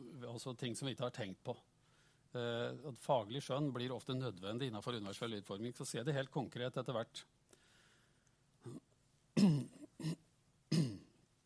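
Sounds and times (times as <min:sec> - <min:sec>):
speech: 0:00.0 - 0:01.7, 0:02.3 - 0:07.3, 0:08.6 - 0:08.9
person clearing throat in short raspy bursts: 0:08.6 - 0:11.2.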